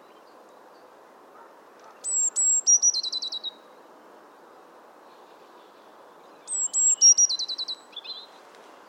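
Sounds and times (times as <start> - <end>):
faint background hiss: 0.0 - 8.8
Eurasian blue tit Cyanistes caeruleus singing high whistles and trill: 2.0 - 3.6, 6.5 - 8.2.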